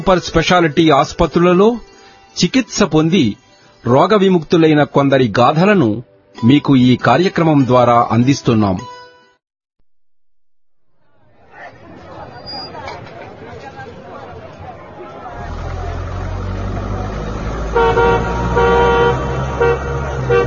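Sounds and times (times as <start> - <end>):
speech: 0.0 - 8.9
crowd chatter: 11.0 - 17.6
approaching car engine rumble: 14.4 - 20.4
car horn toots: 17.6 - 20.4.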